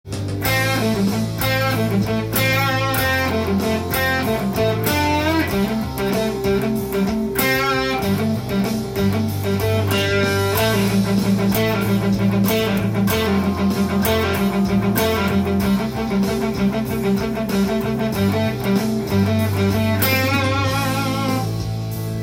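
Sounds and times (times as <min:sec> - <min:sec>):
four tone guitar solo: 0:00.4 - 0:22.2.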